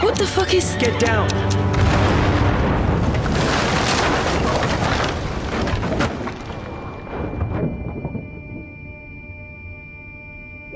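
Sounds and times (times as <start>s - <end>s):
speech: 0.2s - 1.8s
massive roaring explosion: 1.7s - 5.5s
debris-like rattles: 1.7s - 8.5s.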